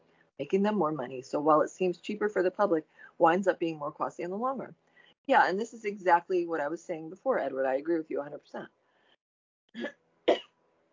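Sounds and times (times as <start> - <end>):
speech: 0.4 - 8.8, 9.7 - 10.4
person coughing harshly: 9.8 - 10.5.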